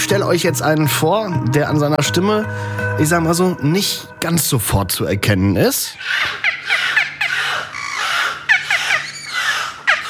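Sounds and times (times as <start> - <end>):
speech: 0.1 - 6.8
beluga whale squeals, chirps and whistles: 6.0 - 10.0.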